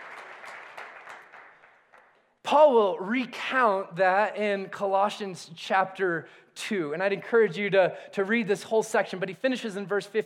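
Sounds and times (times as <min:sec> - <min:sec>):
audience applause: 0:00.0 - 0:02.1
speech: 0:02.5 - 0:10.2.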